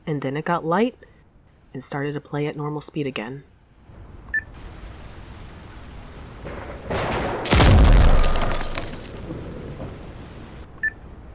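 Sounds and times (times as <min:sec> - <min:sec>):
speech: 0:00.1 - 0:01.1, 0:01.7 - 0:03.5
explosive blast on a lightning rod: 0:06.6 - 0:09.3.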